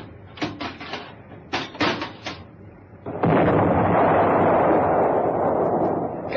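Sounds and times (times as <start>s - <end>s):
loud continuous roar: 0.0s - 6.3s
heavy booming blasts: 3.0s - 6.3s.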